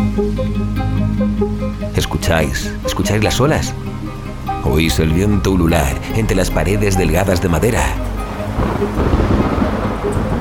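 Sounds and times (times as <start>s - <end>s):
speech: 0.2s - 3.9s, 4.6s - 10.3s
heavy rain from an approaching thunderstorm: 3.4s - 10.3s
low rolling thunder from an approaching storm: 8.2s - 10.3s.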